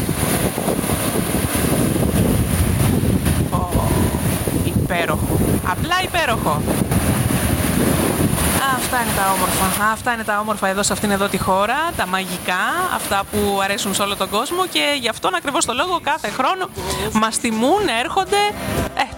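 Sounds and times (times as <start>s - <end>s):
wind rushing across the microphone at a beach: 0.0s - 19.0s
sea waves washing at a beach: 0.0s - 19.1s
speech: 5.0s - 7.1s, 8.6s - 19.1s.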